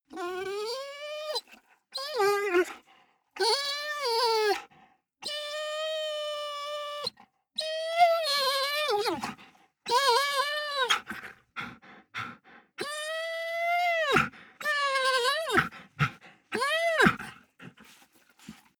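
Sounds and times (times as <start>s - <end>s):
dog whining heavily: 0.1s - 2.7s, 3.4s - 4.6s, 5.2s - 18.6s.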